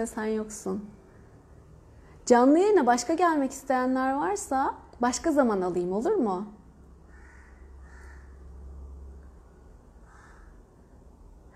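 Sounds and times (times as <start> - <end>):
speech: 0.0 - 1.0, 2.3 - 6.6
crows cawing outside: 7.0 - 8.5, 10.0 - 10.8.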